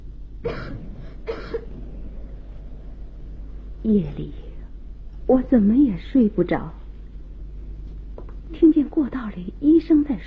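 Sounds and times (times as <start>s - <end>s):
low steady hum: 0.0s - 10.2s
person coughing in a Beijing opera and folk-art performance: 0.4s - 1.8s
speech: 3.8s - 4.4s, 5.3s - 6.8s, 8.5s - 10.2s.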